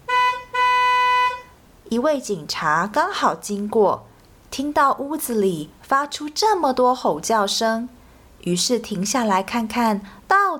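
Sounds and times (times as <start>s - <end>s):
taxi car horn honking: 0.0s - 1.6s
speech: 1.9s - 10.5s.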